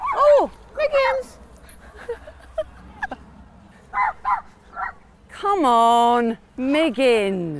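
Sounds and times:
laughter: 1.6 - 3.4
small dog barking while chasing off a larger dog: 3.9 - 5.0
speech: 5.6 - 7.5.

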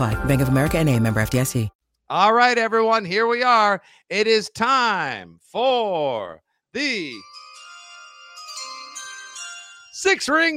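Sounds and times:
speech: 0.0 - 7.4, 10.0 - 10.5
home doorbell chime ringing: 7.0 - 10.5.

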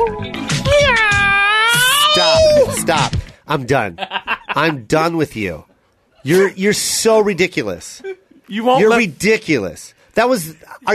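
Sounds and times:
person imitating a cat meow: 0.6 - 2.8
speech: 2.9 - 10.9.

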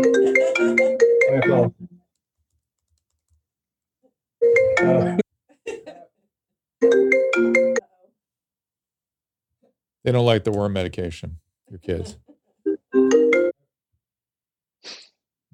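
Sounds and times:
laughter: 0.0 - 1.2, 5.0 - 6.3, 11.7 - 12.6
phone ringtone with a bright repeating melodic pattern: 0.0 - 1.7, 6.8 - 7.8, 12.9 - 13.6
speech: 1.4 - 1.9, 4.4 - 5.2, 6.8 - 7.8, 10.0 - 12.3.

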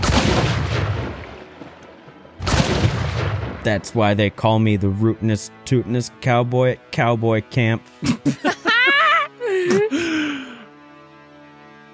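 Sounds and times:
goopy explosion blasts: 0.0 - 1.5, 2.4 - 4.0
speech: 3.6 - 8.6, 9.7 - 10.0
laughter: 7.9 - 10.6.

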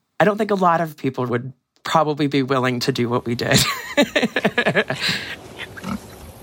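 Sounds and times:
speech: 0.2 - 6.0
laughter: 3.5 - 5.8
pigs grunting and oinking: 5.0 - 6.3.

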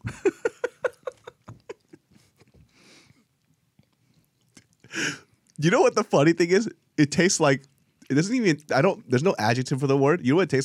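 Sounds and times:
laughter: 0.0 - 2.0
food chewed with crunchy bites: 0.7 - 5.6
soft mouth sounds: 1.1 - 5.6
speech: 5.6 - 10.6.

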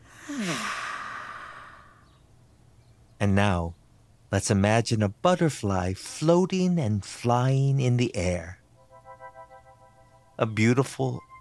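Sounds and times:
slow breath out through the mouth during a guided relaxation exercise: 0.0 - 2.2
speech: 3.2 - 8.6, 10.4 - 11.3.

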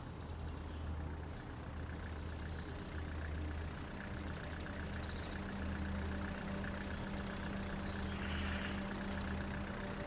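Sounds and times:
pickup truck engine idling: 0.1 - 10.0
faint high chirps: 1.2 - 10.0.

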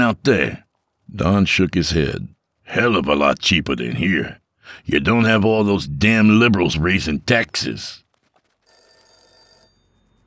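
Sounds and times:
speech: 0.1 - 8.0
telephone bell ringing: 8.7 - 10.2.

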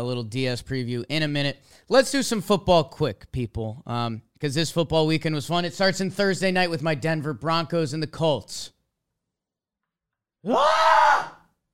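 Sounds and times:
speech: 0.0 - 8.8, 10.4 - 11.4
man screaming away from the microphone: 10.4 - 11.5.

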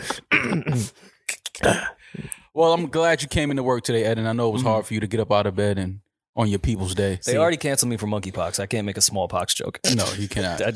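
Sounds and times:
rough voiced throat clearing: 0.0 - 1.0
slight throaty coughing: 0.1 - 1.0, 9.9 - 10.3
speech: 1.6 - 1.9, 2.6 - 10.7.

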